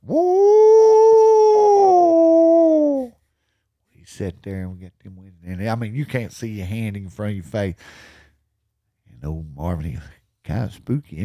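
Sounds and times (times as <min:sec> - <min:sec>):
coyote howling: 0:00.0 - 0:03.1
speech: 0:04.2 - 0:08.2, 0:09.2 - 0:11.2.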